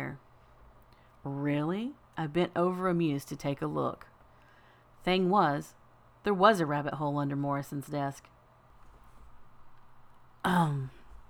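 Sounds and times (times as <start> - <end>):
speech: 1.2 - 4.1, 5.0 - 8.3, 10.4 - 11.0
throat clearing: 10.4 - 11.2.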